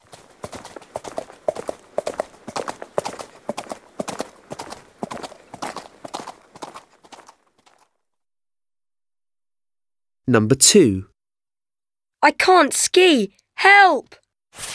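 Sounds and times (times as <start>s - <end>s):
horse hooves clip-clopping at a brisk trot: 0.0s - 7.9s
speech: 10.3s - 11.1s, 12.2s - 14.7s.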